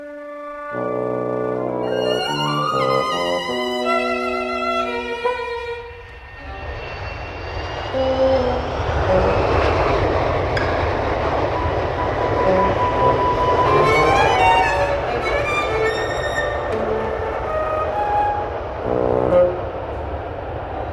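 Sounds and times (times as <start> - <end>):
brief musical tone: 0.0 - 6.8, 11.6 - 19.8
airplane flying overhead: 0.0 - 20.9.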